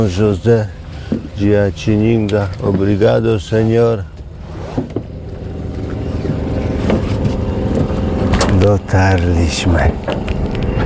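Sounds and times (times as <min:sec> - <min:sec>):
speech: 0:00.0 - 0:04.1, 0:04.8 - 0:05.0, 0:08.7 - 0:10.3
small motorboat engine droning as the boat reaches a dried-out riverbank: 0:00.0 - 0:10.8.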